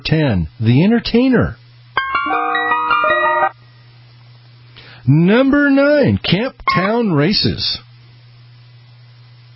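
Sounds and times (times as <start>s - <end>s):
speech: 0.0s - 1.6s, 5.0s - 7.9s
ice cream truck jingle melody: 2.0s - 3.5s.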